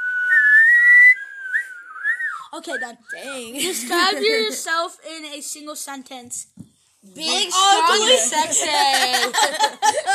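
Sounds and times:
person whistling a single sustained sliding tone: 0:00.0 - 0:03.4
speech: 0:02.5 - 0:10.1
laughter: 0:03.6 - 0:04.6, 0:07.9 - 0:10.1.

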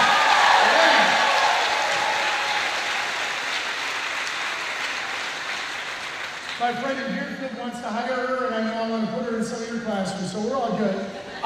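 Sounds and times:
audience applauding: 0:00.0 - 0:07.1
speech: 0:06.7 - 0:11.4.

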